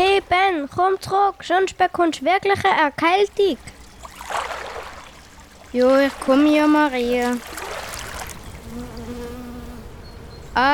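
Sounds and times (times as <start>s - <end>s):
soft rushing noise: 0.0s - 10.7s
speech: 0.5s - 3.7s, 5.7s - 7.6s, 10.6s - 10.7s
bees buzzing: 3.6s - 10.7s.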